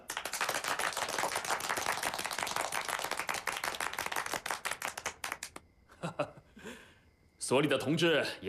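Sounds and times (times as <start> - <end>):
meeting audience applauding: 0.0 - 5.6
speech: 7.5 - 8.4.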